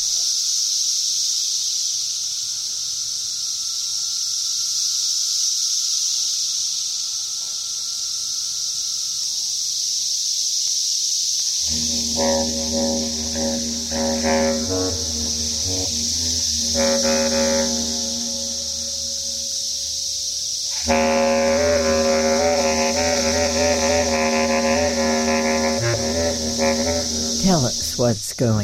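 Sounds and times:
periodical cicada chorus drone of Brood I near Lexington, Virginia: 0:00.0 - 0:28.6
live bass clarinet playing low sustained notes: 0:11.6 - 0:28.0
speech: 0:12.5 - 0:17.9, 0:28.0 - 0:28.6.

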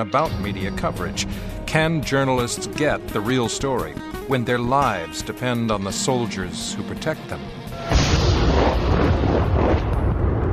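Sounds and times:
speech: 0:00.0 - 0:08.0
incoming gunfire from buildings in a war zone: 0:07.9 - 0:10.5.

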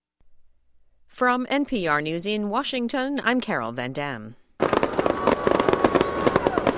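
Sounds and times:
speech: 0:01.2 - 0:04.4
fireworks bursting over the Chicago skyline at night on the 4th of July: 0:04.6 - 0:06.7.

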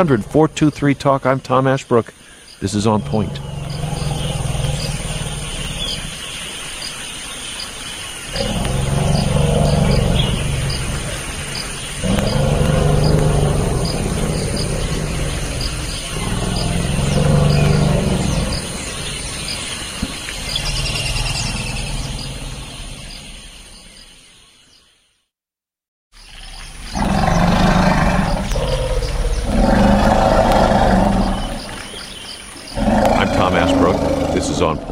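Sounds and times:
speech: 0:00.0 - 0:03.8
steady hum of insects: 0:00.0 - 0:25.0, 0:26.2 - 0:34.9
forest elephants in the Central African Republic greeting with rumbling roars and squeals: 0:02.9 - 0:06.4, 0:08.3 - 0:23.2, 0:26.9 - 0:31.9, 0:32.7 - 0:34.9.

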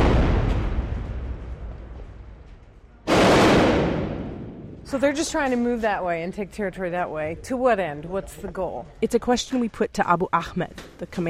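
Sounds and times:
heavy artillery shell blast: 0:00.0 - 0:02.3, 0:03.1 - 0:04.9
speech: 0:04.9 - 0:11.2.

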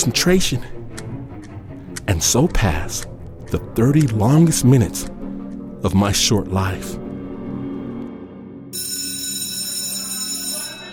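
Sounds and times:
speech: 0:00.0 - 0:00.8, 0:02.1 - 0:05.2, 0:05.8 - 0:07.0
loud electric school bell ringing: 0:08.8 - 0:10.9.

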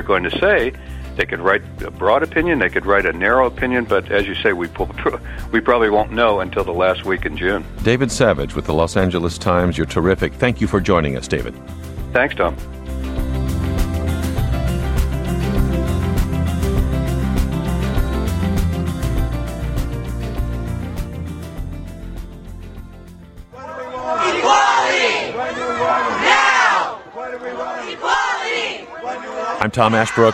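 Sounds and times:
steady music: 0:00.0 - 0:26.9
speech: 0:00.1 - 0:13.1, 0:29.8 - 0:30.3
crowd of gay marriage advocates chanting outside the Supreme Court: 0:23.5 - 0:30.3.

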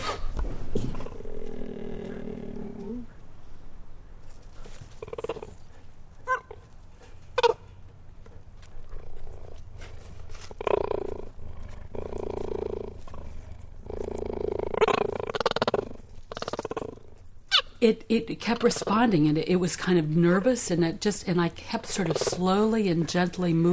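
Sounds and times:
cheetah purring and growling: 0:00.7 - 0:03.1, 0:04.7 - 0:05.8, 0:08.8 - 0:17.3, 0:21.8 - 0:23.7
speech: 0:17.8 - 0:23.7.

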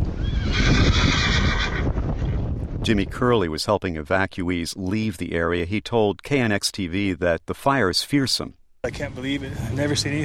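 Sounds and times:
horse whinnying during wildfire evacuation: 0:00.1 - 0:02.4
speech: 0:02.9 - 0:10.2.

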